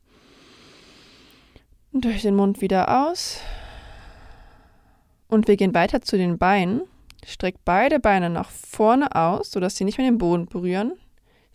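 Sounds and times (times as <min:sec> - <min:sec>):
deep inhale through the nose: 0:00.0 - 0:01.7, 0:03.4 - 0:05.2
speech: 0:02.0 - 0:03.5, 0:05.3 - 0:11.0.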